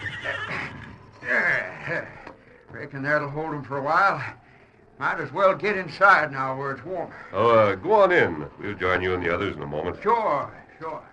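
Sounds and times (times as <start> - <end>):
horse hooves shuffling: 0.0 - 1.2
horse whinnying in a barn: 0.0 - 1.9
speech: 1.3 - 4.4, 5.0 - 11.1.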